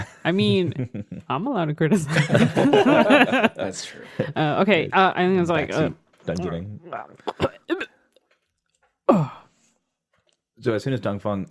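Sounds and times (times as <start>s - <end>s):
laughter: 0.0s - 1.2s, 2.0s - 4.6s, 6.9s - 7.7s
speech: 0.2s - 7.8s, 9.1s - 9.4s, 10.6s - 11.4s
brief throaty vocal noises: 6.3s - 7.9s.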